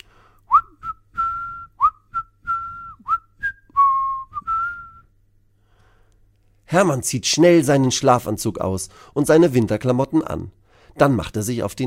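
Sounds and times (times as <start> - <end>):
person whistling a bright bouncy tune: 0.5 - 5.1
speech: 6.7 - 11.8.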